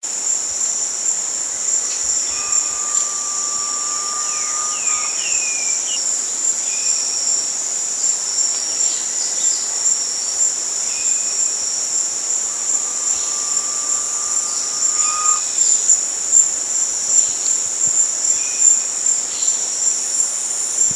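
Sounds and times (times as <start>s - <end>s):
constant high insect drone: 0.1s - 20.9s
garnet pitta long whistle call at Danum: 1.8s - 6.9s, 11.2s - 17.3s
short high notes: 2.0s - 6.1s, 12.2s - 16.4s.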